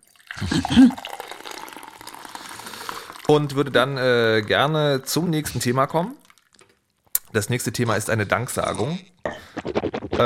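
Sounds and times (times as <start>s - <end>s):
tea poured steadily into a cup: 0.0s - 6.6s
speech: 0.4s - 1.1s, 3.3s - 6.2s, 7.3s - 10.2s.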